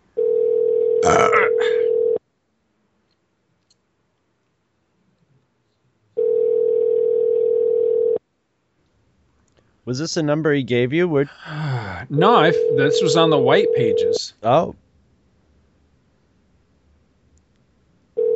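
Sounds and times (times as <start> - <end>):
telephone ringback tones on an unanswered line: 0.2 - 2.2, 6.2 - 8.2, 12.2 - 14.2
speech: 9.9 - 14.8.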